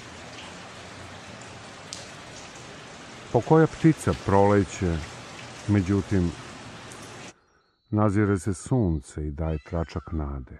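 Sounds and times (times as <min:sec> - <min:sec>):
light drizzling rain on a cold autumn day in Munich: 0:00.0 - 0:07.4
speech: 0:03.3 - 0:05.1, 0:05.7 - 0:06.4, 0:07.9 - 0:10.5.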